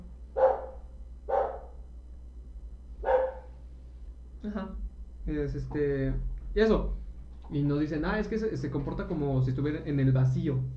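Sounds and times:
low hum: 0:00.0 - 0:10.7
dog barking: 0:00.4 - 0:01.8, 0:03.0 - 0:03.6
speech: 0:04.4 - 0:10.7.

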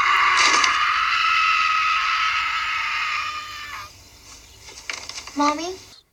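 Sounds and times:
man screaming as he wakes up: 0:00.0 - 0:03.9
speech: 0:05.4 - 0:05.9.

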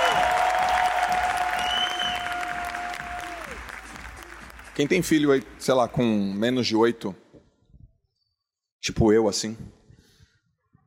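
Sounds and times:
audience applause: 0:00.0 - 0:06.0
whistle-like tones: 0:01.6 - 0:02.4
speech: 0:04.8 - 0:07.2, 0:08.8 - 0:09.8.

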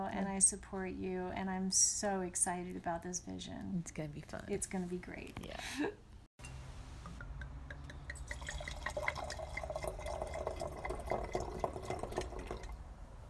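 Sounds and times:
speech: 0:00.0 - 0:06.0
wine pouring from a bottle into a glass: 0:07.4 - 0:12.8.

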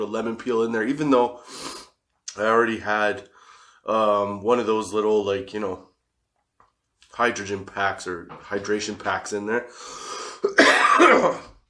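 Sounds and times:
speech: 0:00.0 - 0:01.8, 0:02.4 - 0:05.9, 0:07.2 - 0:11.5
harsh raspy cough: 0:10.3 - 0:11.6.

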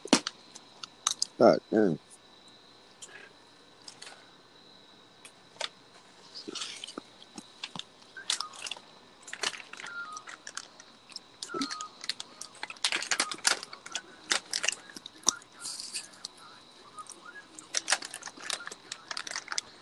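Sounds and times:
speech: 0:01.4 - 0:02.1
crunchy chewing of seeds seasoned with adobo: 0:06.2 - 0:19.8.

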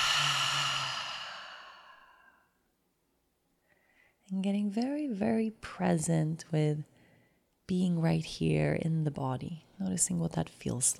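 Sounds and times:
long breath out through the open mouth during a guided breathing exercise: 0:00.0 - 0:02.4
speech: 0:04.3 - 0:06.9, 0:07.7 - 0:10.9.

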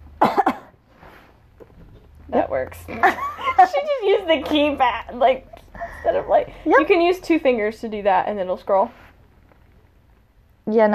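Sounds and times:
harsh dry coughs: 0:00.2 - 0:00.8
speech: 0:02.3 - 0:09.0, 0:10.7 - 0:10.9.

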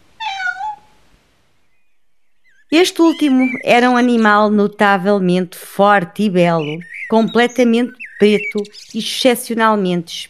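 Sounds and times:
cat meowing: 0:00.2 - 0:01.0
speech: 0:02.7 - 0:10.2.

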